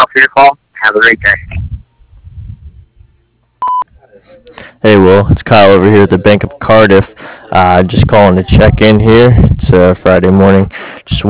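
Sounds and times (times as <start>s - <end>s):
speech: 0.1s - 1.6s, 4.4s - 11.2s
short loud electronic answering machine beep: 3.6s - 3.8s.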